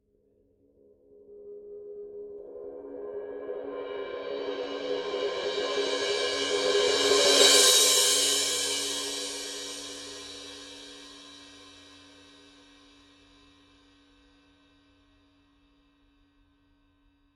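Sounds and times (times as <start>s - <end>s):
Signature 17 power crash cymbal roll: 4.3s - 12.2s.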